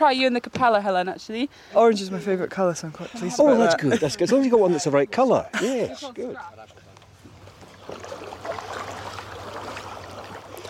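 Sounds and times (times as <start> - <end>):
speech: 0.0 - 6.8
laughter: 3.2 - 6.1
kayak sliding into water: 7.2 - 10.6.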